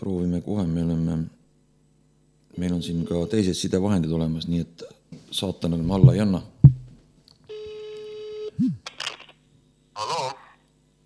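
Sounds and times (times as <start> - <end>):
speech: 0.0 - 1.4, 2.6 - 6.8
steady electronic telephone dialing tone: 5.8 - 7.0.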